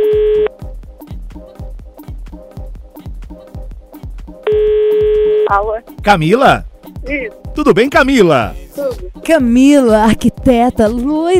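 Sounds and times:
telephone dial tone: 0.0s - 0.5s, 4.5s - 5.5s
speech: 5.5s - 8.6s, 9.3s - 11.3s.

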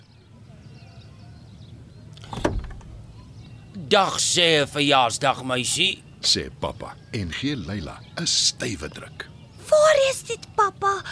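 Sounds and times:
car engine rumble pulling into a driveway: 2.1s - 3.7s
speech: 3.9s - 11.0s.

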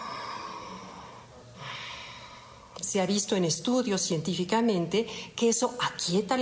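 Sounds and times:
slow steady breathing close to the microphone: 0.0s - 2.8s
speech: 2.9s - 6.4s.

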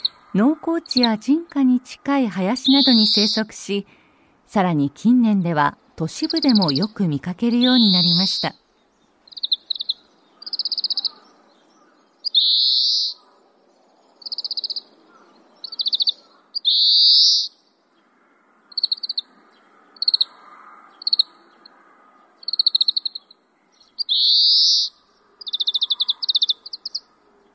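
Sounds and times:
Oriental greenfinch calls: 0.0s - 3.6s, 6.1s - 8.6s, 9.3s - 13.4s, 14.2s - 17.6s, 22.4s - 27.1s
speech: 0.3s - 8.6s.

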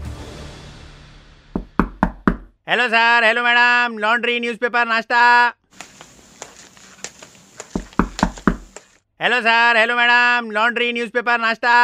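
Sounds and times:
hotel waiter knocking firmly on a room door: 1.6s - 2.5s, 7.8s - 8.7s
speech: 2.7s - 5.6s, 9.2s - 11.8s.

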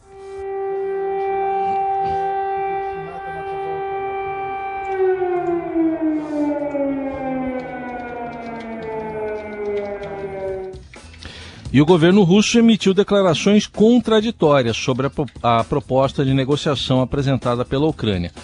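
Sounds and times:
air raid warning siren wailing in Kyiv Ukraine: 0.0s - 11.0s, 13.1s - 14.0s
speech: 11.8s - 18.4s.

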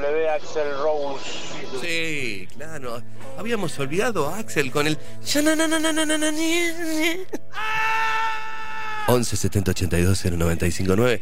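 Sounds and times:
speech: 0.0s - 8.0s, 9.1s - 11.2s
rock singer's piercing high-pitched scream with vibrato: 7.5s - 9.3s.

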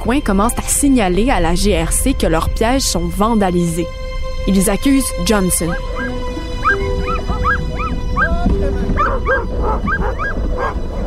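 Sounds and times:
speech: 0.0s - 6.0s, 9.2s - 11.0s
low rumbling background: 0.0s - 11.0s
pack of sled dogs barking and yipping: 5.5s - 11.0s.

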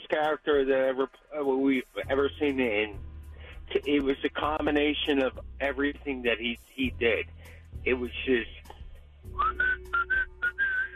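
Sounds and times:
speech: 0.1s - 3.1s, 3.7s - 9.8s
person whistling a short tune: 9.3s - 10.9s.

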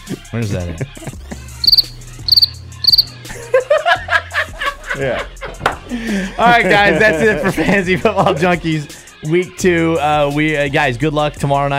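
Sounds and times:
laughter: 0.0s - 1.6s, 3.3s - 8.9s
speech: 0.1s - 1.1s, 5.0s - 11.7s
cricket chirping in pulsed bursts and warbling chirps: 1.6s - 3.2s.

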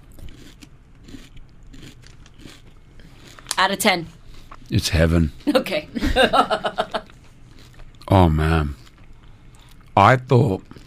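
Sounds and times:
crunchy chewing of kanafeh dessert with pistachio and tahini: 0.0s - 3.6s, 7.0s - 10.0s, 10.6s - 10.8s
speech: 3.6s - 6.8s, 8.2s - 8.8s, 10.0s - 10.7s
laughter: 5.9s - 7.1s.

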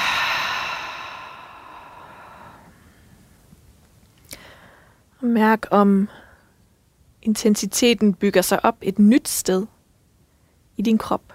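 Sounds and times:
slow breath drawn in through the nose and let out during a guided relaxation exercise: 0.0s - 3.2s, 4.3s - 5.1s
speech: 5.2s - 6.2s, 7.2s - 9.7s, 10.8s - 11.3s.

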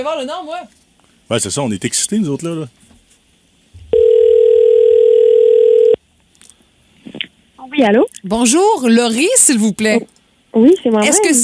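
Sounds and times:
speech: 0.0s - 3.0s, 7.6s - 11.4s
steady loud telephone tone while a call is placed: 3.9s - 6.0s.

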